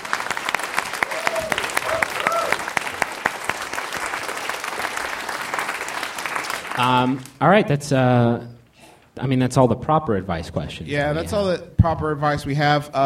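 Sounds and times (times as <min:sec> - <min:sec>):
audience applause at a live comedy show at a convention: 0:00.0 - 0:07.4
speech: 0:06.8 - 0:08.5, 0:09.2 - 0:13.0.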